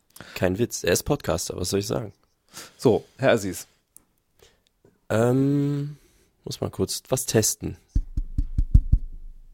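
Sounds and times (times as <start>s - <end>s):
speech: 0.4s - 3.7s, 5.1s - 7.8s
dull knocks on a door or wooden surface: 8.0s - 9.2s.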